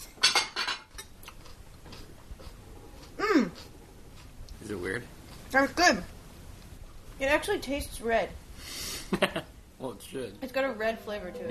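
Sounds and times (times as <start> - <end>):
utensils and dishware clinking as soup and salad are served into bowls and plates: 0.1 - 1.1
speech: 5.6 - 6.1, 7.2 - 8.4, 9.1 - 11.4.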